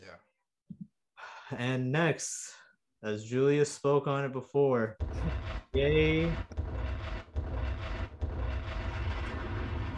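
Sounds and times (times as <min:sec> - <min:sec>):
speech: 0:01.5 - 0:06.6
bomb explosions sound effect: 0:05.0 - 0:09.9.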